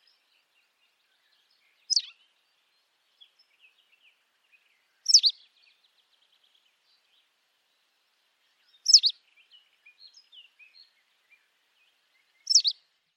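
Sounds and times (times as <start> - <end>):
white wagtail two-part chirps: 1.9 - 2.1, 5.1 - 5.4, 8.9 - 9.1, 12.4 - 12.8.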